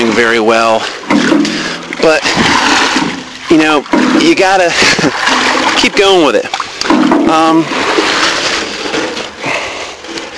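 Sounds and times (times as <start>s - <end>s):
water gushing and splashing into a pig's trough: 0.0s - 9.4s
speech: 0.2s - 2.7s, 3.5s - 8.0s.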